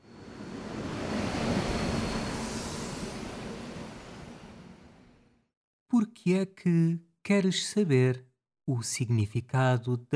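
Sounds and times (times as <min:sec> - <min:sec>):
train arriving at a station: 0:00.0 - 0:05.2
speech: 0:06.2 - 0:10.1.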